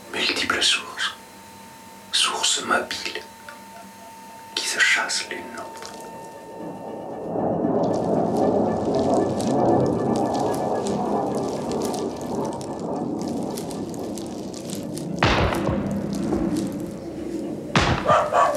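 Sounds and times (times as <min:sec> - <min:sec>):
dense rumbling outdoor background: 0:00.0 - 0:18.5
speech: 0:00.1 - 0:01.2, 0:02.6 - 0:03.4, 0:05.0 - 0:05.9
distant detonation: 0:06.1 - 0:18.5
dog barking: 0:17.9 - 0:18.5.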